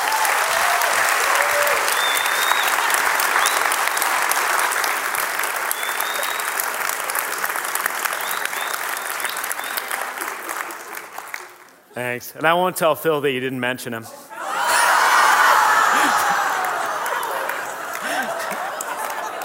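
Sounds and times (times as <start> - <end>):
faint whistles and cheers: 0.0 - 4.3, 5.7 - 6.8, 8.1 - 10.0
sizable crowd applauding staff: 0.0 - 11.9, 14.4 - 19.4
speech: 12.0 - 14.2
laughter: 14.4 - 19.4.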